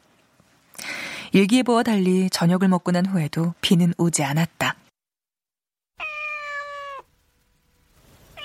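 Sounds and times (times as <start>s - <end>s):
speech: 1.3s - 4.8s
cat meowing: 6.0s - 7.1s.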